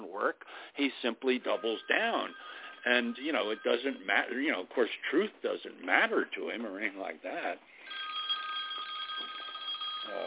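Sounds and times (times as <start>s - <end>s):
speech: 0.2s - 7.8s, 10.1s - 10.2s
telephone ringing with a steady electronic tone: 1.4s - 4.5s, 7.8s - 10.2s.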